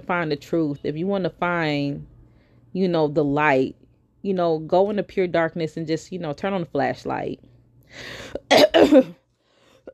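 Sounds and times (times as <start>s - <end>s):
speech: 0.1s - 2.1s, 2.7s - 9.2s
loud harsh coughs: 8.2s - 9.2s.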